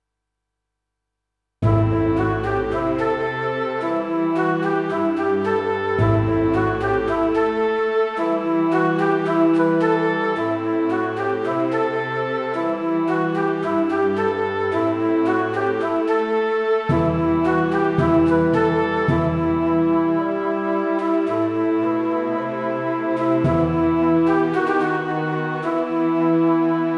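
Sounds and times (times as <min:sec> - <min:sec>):
symphonic riff in E minor at 110 BPM: 0:01.6 - 0:26.8.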